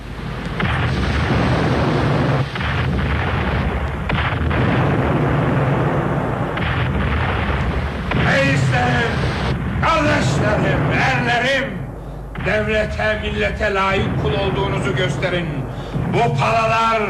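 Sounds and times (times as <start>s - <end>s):
artillery cannons firing on command: 0.0s - 17.0s
person's voice: 8.2s - 9.2s, 9.8s - 17.0s
speech: 12.6s - 17.0s.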